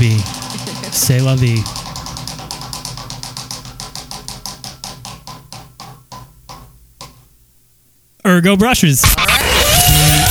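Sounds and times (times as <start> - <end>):
prize wheel being spun, pointer ticking: 0.0 - 7.5
speech: 0.9 - 1.8, 8.3 - 9.3.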